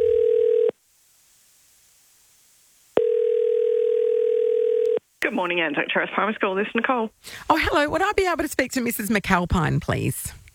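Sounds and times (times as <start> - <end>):
telephone dial tone: 0.0 - 0.7, 3.0 - 5.0
speech: 5.3 - 10.4.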